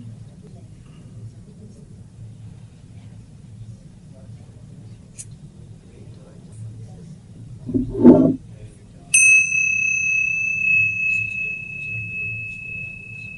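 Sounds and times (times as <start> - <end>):
meditation bell ringing: 9.2 - 13.3.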